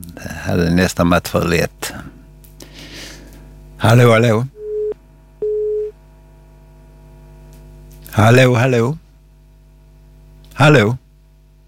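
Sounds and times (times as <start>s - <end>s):
speech: 0.2s - 1.8s, 3.8s - 4.6s, 8.2s - 9.0s, 10.6s - 11.0s
telephone line tone, call not answered: 4.6s - 5.9s.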